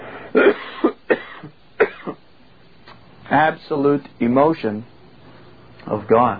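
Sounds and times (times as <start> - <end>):
dry hacking cough: 0.2 - 2.3
speech: 3.3 - 4.9, 5.8 - 6.3.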